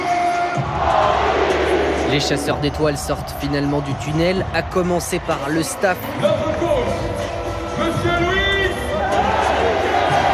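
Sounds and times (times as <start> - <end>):
large stadium crowd cheering: 0.0 - 10.3
speech: 2.1 - 7.1, 7.9 - 8.4.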